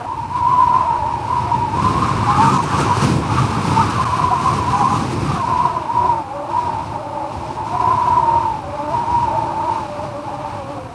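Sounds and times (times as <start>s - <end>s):
wind at a windmill: 0.0s - 10.9s.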